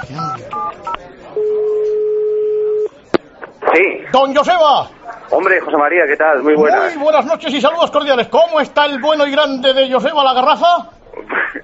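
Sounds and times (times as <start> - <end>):
speech: 0.0 - 1.4, 3.7 - 11.6
long steady telephone tone: 1.4 - 2.9.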